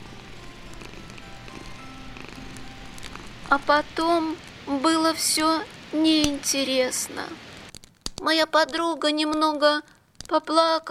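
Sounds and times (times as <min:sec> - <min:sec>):
cat purring: 0:00.0 - 0:06.5
speech: 0:03.5 - 0:07.5, 0:08.2 - 0:10.9.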